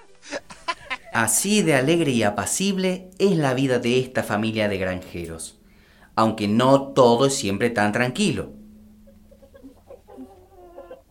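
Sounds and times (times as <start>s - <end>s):
laughter: 0.0s - 1.3s
low steady hum: 0.1s - 11.0s
speech: 1.2s - 5.6s, 6.2s - 8.6s
hens clucking and squawking on a family farm: 8.9s - 11.0s.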